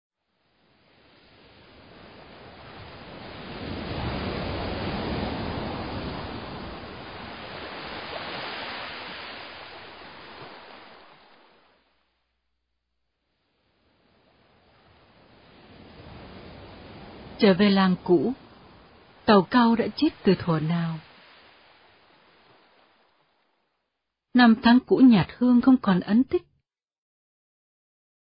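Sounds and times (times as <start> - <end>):
ocean waves washing onto the shore: 0.2 - 12.1, 13.3 - 23.8
speech: 17.4 - 18.4, 19.3 - 21.1, 24.4 - 26.5.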